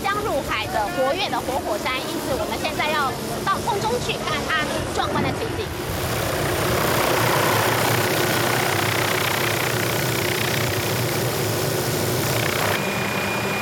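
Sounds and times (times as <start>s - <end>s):
helicopter engine and rotor in flight toward an erupting volcano crater: 0.0s - 13.6s
speech: 0.8s - 6.2s.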